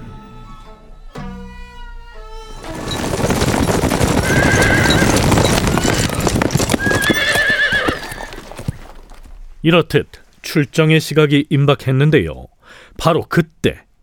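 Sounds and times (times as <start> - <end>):
many horse hooves clip-clopping: 2.6 - 10.5
horse neighing: 2.9 - 8.9
speech: 9.6 - 13.9.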